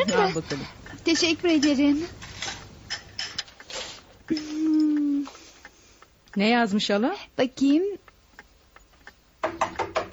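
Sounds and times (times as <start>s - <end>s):
speech: 0.2s - 2.2s, 6.4s - 8.0s
rapid knocking on a door: 9.4s - 10.1s.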